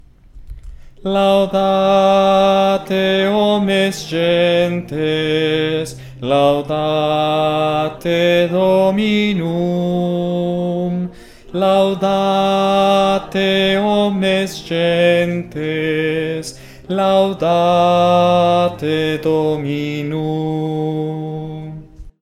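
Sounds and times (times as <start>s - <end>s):
soprano singing an octave higher: 1.0s - 22.1s.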